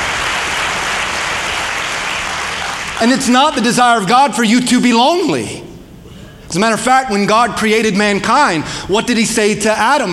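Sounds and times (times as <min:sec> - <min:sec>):
congregation applauding: 0:00.0 - 0:03.2
speech: 0:03.0 - 0:05.6, 0:06.5 - 0:10.1.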